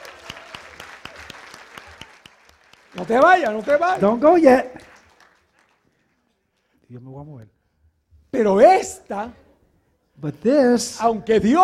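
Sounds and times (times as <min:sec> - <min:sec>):
audience clapping: 0:00.0 - 0:06.8
speech: 0:02.9 - 0:04.8, 0:06.9 - 0:07.6, 0:08.3 - 0:09.4, 0:10.2 - 0:11.6.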